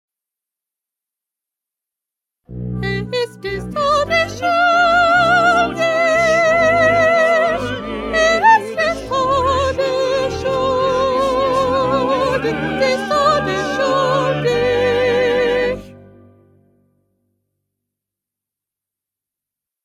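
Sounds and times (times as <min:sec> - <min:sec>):
first soprano voice: 0:02.8 - 0:15.9.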